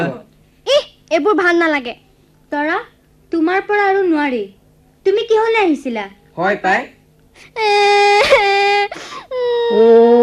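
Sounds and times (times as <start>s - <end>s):
speech: 1.1s - 10.2s
child crying in long wails: 7.4s - 10.2s.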